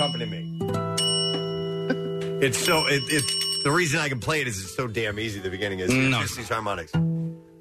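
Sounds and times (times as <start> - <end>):
desk bell dinging: 0.0 - 4.1
speech: 0.2 - 0.8, 2.4 - 7.1.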